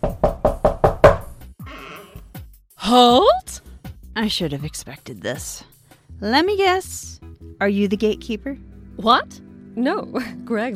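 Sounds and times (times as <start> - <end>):
knocking on a door: 0.0 - 1.4
speech: 2.9 - 3.5, 4.2 - 10.7.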